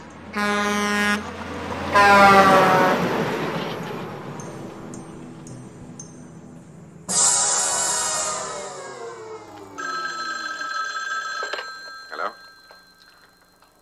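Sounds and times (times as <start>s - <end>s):
big pink dump truck air horn blasting on the road: 0.3s - 3.8s
speech: 0.4s - 1.3s, 2.0s - 2.6s
harsh burst of noise: 7.1s - 9.7s.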